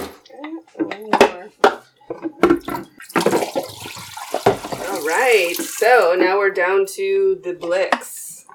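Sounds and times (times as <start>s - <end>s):
water sloshing in a small film developing tank during a wash: 2.4s - 6.4s
speech: 5.3s - 8.1s.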